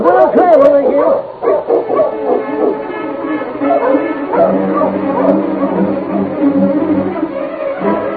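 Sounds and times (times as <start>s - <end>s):
team of sled dogs barking and yipping excitedly: 0.0s - 8.0s
sled dogs whimpering and yelping: 0.9s - 7.3s.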